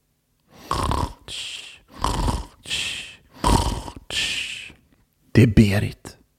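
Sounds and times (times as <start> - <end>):
snoring from within a strawberry plant in a strawberry field: 0.6 - 4.8
speech: 1.3 - 1.5, 5.4 - 6.0.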